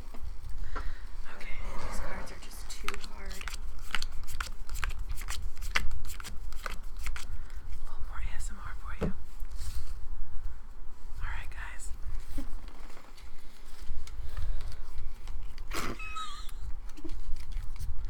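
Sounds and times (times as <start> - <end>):
soft whispery rustle of cards: 0.2 - 4.0, 7.1 - 15.6
stiff new playing cards being shuffled: 1.6 - 7.9, 12.2 - 18.0.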